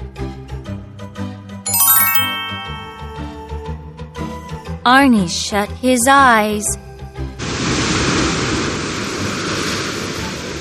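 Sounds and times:
speech: 0:04.8 - 0:06.8
big ocean waves crashing: 0:07.4 - 0:10.6.

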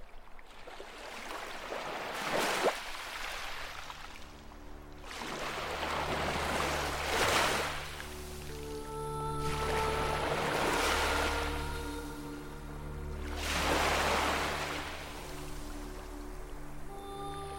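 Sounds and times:
ocean surf rolling in and washing back: 0:01.6 - 0:17.5
low droning hum: 0:04.2 - 0:17.5.

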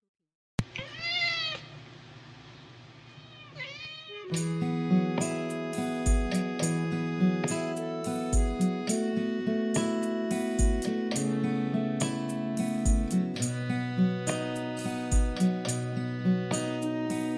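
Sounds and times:
cat's strained wailing scream edited to sound like a meow: 0:00.7 - 0:01.7, 0:03.1 - 0:04.4
rhythmic band-style music intro of a song: 0:04.4 - 0:11.4, 0:12.0 - 0:17.3.

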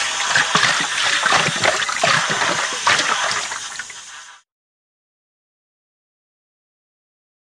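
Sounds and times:
dental water jet spraying water: 0:00.0 - 0:04.4.

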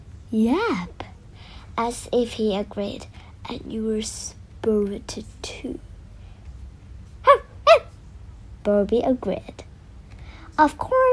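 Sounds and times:
faint low hum: 0:00.0 - 0:11.1
speech: 0:00.3 - 0:01.0, 0:01.8 - 0:05.9, 0:08.6 - 0:09.7, 0:10.6 - 0:11.1
small dog barking: 0:07.2 - 0:07.9.

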